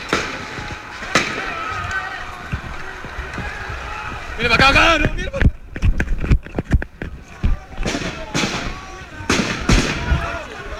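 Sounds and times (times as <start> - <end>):
gunshots during a street demonstration: 0.0 - 2.2, 7.8 - 10.5
crowd commotion in an open street: 0.0 - 10.7
speech: 4.4 - 5.4.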